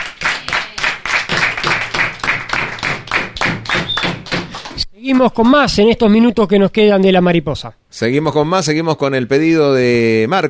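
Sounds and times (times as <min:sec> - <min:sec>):
loud rhythmic applause closing a radio program: 0:00.0 - 0:04.8
speech: 0:05.0 - 0:10.4.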